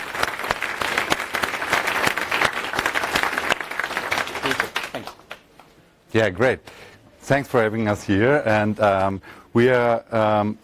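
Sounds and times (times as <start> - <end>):
room full of people applauding at a presentation: 0.0 - 5.4
speech: 6.2 - 10.6.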